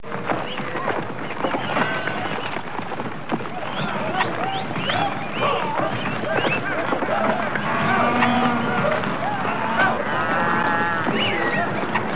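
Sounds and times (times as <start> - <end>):
herd of animals: 0.0 - 12.1.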